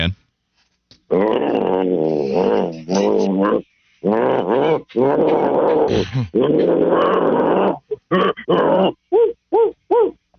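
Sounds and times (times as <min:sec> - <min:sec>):
male caller on a phone line imitating a guard dog growling and snarling: 0:01.1 - 0:09.0
male caller on a phone line imitating a guard dog barking: 0:01.6 - 0:10.1
speech: 0:05.0 - 0:07.8.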